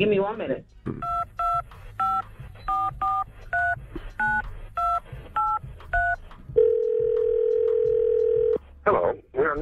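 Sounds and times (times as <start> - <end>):
speech: 0.0 - 1.1
telephone keypad tones dialing a number: 1.0 - 8.6.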